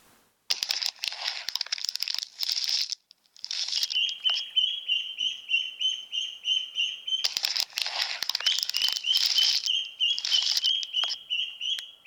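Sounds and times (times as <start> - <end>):
crinkling and rustling: 0.0 - 4.5, 7.2 - 11.2
newly hatched yellow chicks peeping: 3.7 - 12.0.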